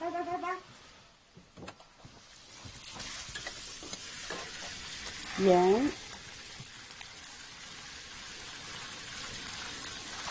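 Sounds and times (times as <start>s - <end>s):
food stir-frying and sizzling in a pan: 0.0s - 1.3s, 2.0s - 10.2s
stirring strokes scraping a pan: 2.2s - 10.1s
speech: 5.4s - 6.0s.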